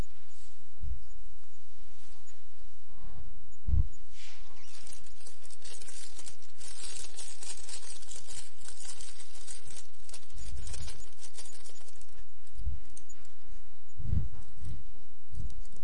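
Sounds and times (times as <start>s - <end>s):
soft low thumps: 0.0s - 15.8s
steady shuffling texture: 0.0s - 15.8s
paper rustling and crinkling as sheets and pens are handed out: 4.6s - 13.3s.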